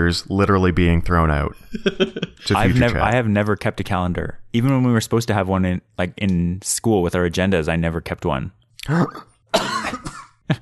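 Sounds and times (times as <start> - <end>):
speech: 0.0 - 9.8
laughter: 1.7 - 3.1
person coughing hard after choking: 9.0 - 10.5.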